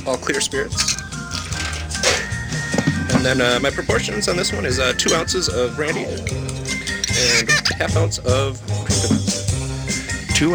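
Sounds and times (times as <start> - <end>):
speech: 0.0 - 1.1, 2.8 - 9.5, 10.4 - 10.5
ice cubes clattering into a mixing glass: 0.8 - 2.3.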